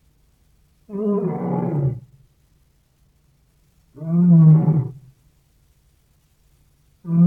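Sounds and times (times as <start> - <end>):
lion giving low rumbling roars: 0.9 - 2.1, 4.0 - 5.0.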